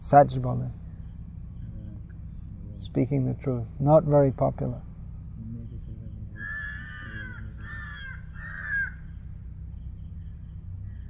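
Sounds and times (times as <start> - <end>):
speech: 0.0 - 0.8, 2.8 - 4.9
steady low rumble: 0.0 - 11.0
crow cawing: 6.2 - 9.2.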